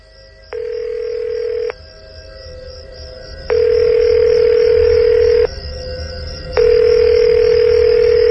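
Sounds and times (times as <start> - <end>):
telephone ringback tones of an unanswered call: 0.5 - 1.8, 3.5 - 5.5, 6.6 - 8.2.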